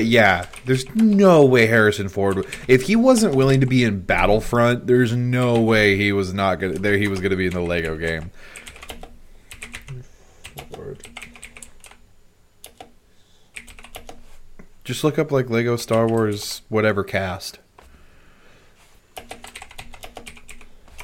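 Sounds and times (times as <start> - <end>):
speech: 0.0 - 8.6, 14.9 - 17.6
low hum: 0.0 - 21.0
clacky typing on a loud computer keyboard: 0.3 - 1.2, 2.3 - 3.8, 6.6 - 12.0, 12.6 - 14.2, 15.8 - 16.4, 19.2 - 21.0.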